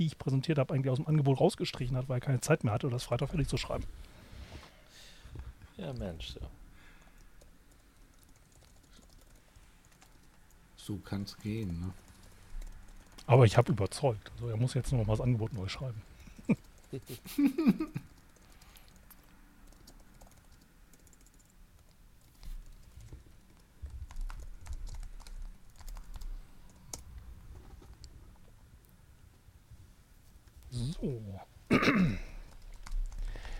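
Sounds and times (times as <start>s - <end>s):
speech: 0.0s - 4.2s, 5.4s - 6.6s, 10.9s - 12.0s, 13.3s - 18.1s, 31.0s - 31.5s
typing on a keyboard: 7.1s - 10.6s, 11.8s - 13.8s, 15.8s - 27.0s, 32.4s - 33.4s
person clearing throat: 31.7s - 32.4s.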